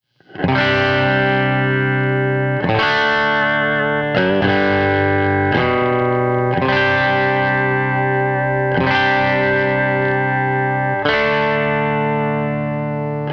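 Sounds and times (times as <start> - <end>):
country guitar chorus: 0.3 - 13.3.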